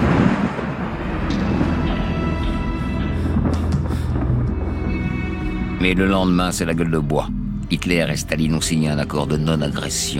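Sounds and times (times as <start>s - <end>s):
low rumbling of a thunderstorm: 0.0s - 5.3s
speech: 5.8s - 10.1s.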